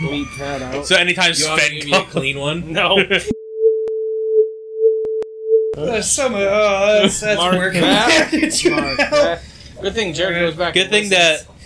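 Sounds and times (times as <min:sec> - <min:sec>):
speech: 0:00.0 - 0:03.4, 0:05.8 - 0:11.6
laughter: 0:01.6 - 0:03.3, 0:06.8 - 0:09.4
steady pure censor bleep: 0:03.3 - 0:05.8.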